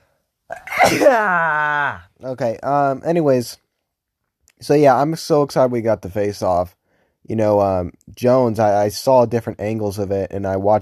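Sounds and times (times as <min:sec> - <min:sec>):
loud sneeze with a voiced drawn-out tail: 0:00.5 - 0:02.0
speech: 0:00.9 - 0:03.6, 0:04.6 - 0:10.8.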